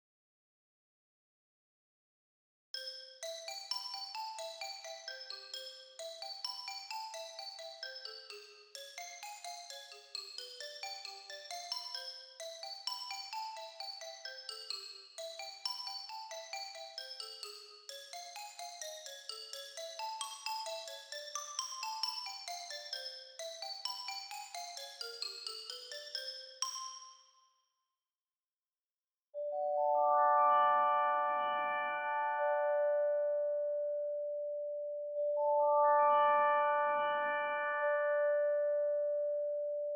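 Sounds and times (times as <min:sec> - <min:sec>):
xylophone: 0:02.8 - 0:27.4
celesta: 0:02.8 - 0:27.6, 0:29.4 - 0:39.9.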